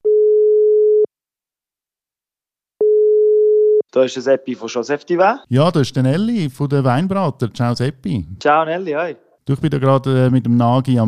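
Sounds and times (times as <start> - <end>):
telephone ringback tone on an outgoing call: 0.1 - 1.1, 2.8 - 3.8
speech: 4.0 - 11.0.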